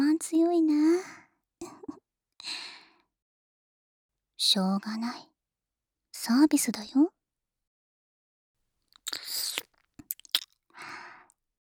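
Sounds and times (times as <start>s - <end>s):
speech: 4.4s - 5.3s, 6.2s - 7.2s
biting and chewing: 9.0s - 10.5s.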